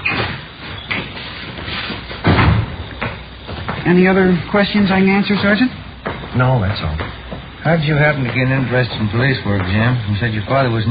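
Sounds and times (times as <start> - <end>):
door shutting thud: 2.2 - 3.8
speech: 3.9 - 10.8.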